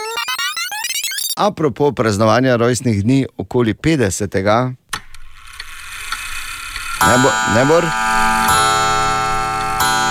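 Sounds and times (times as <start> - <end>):
speech: 1.4 - 4.8, 7.0 - 8.4
clock striking with a sustained metallic ring: 7.0 - 10.0.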